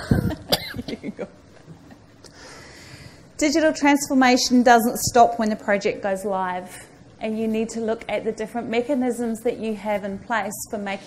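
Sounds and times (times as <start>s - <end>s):
person coughing: 0.0s - 1.0s
faint breathing: 2.2s - 3.4s
speech: 3.4s - 11.0s.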